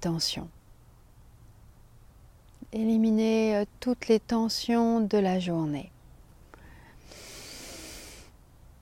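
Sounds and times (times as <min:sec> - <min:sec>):
speech: 0:00.0 - 0:00.6, 0:02.7 - 0:05.9
deep breath during a guided relaxation exercise: 0:06.6 - 0:08.4.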